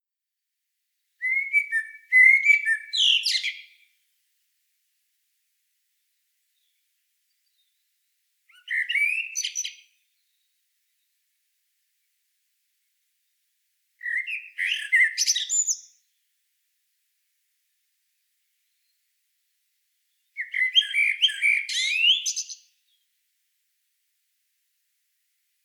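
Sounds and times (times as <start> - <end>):
common blackbird Turdus merula singing flute-like notes and scratchy twitters: 1.2 - 3.8, 8.5 - 10.5, 14.0 - 16.0, 20.3 - 22.7.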